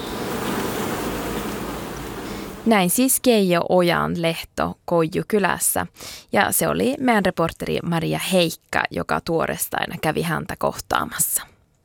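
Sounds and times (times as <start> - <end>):
honeybee swarm buzzing: 0.0 - 2.7
speech: 2.6 - 11.5.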